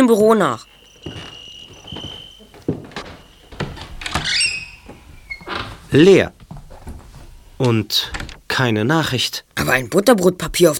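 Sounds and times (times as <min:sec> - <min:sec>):
crickets chirping: 0:00.0 - 0:05.5
speech: 0:00.1 - 0:01.2, 0:05.9 - 0:06.4, 0:07.6 - 0:10.7
door opening with sharp clicks and knocks: 0:02.1 - 0:05.8, 0:07.6 - 0:08.5.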